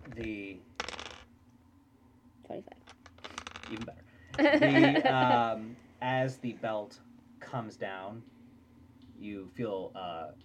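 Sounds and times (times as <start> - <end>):
dice clattering across a hard tabletop: 0.0 - 1.3, 2.8 - 3.9
speech: 0.2 - 0.7, 3.7 - 8.4, 9.2 - 10.4
laughter: 4.4 - 5.6.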